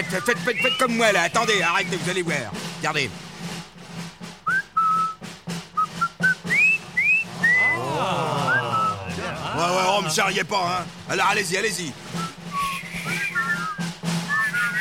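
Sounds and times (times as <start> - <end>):
person whistling a halting tune: 0.0 - 2.1, 4.4 - 9.2, 12.1 - 14.7
speech: 0.0 - 3.3, 10.1 - 12.0
steady rhythmic pulse of beats: 0.0 - 14.7
laughter: 7.4 - 10.8.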